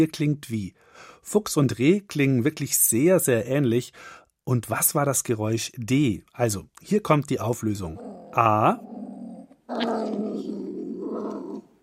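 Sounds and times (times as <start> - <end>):
speech: 0.0 - 8.9, 9.7 - 10.5
beech marten growling cry: 7.9 - 11.8.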